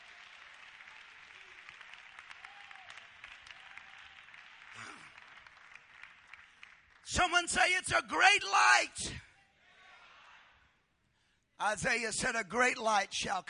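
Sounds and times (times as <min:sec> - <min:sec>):
crowd of people clapping: 0:00.0 - 0:08.3
speech: 0:07.1 - 0:09.3, 0:11.6 - 0:13.4.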